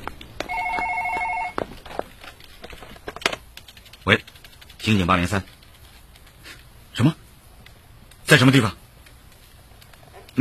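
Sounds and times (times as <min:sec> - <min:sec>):
telephone ringing with rapid electronic warbling trill: 0:00.4 - 0:01.6
speech: 0:04.1 - 0:05.6, 0:07.0 - 0:07.2, 0:08.3 - 0:08.8.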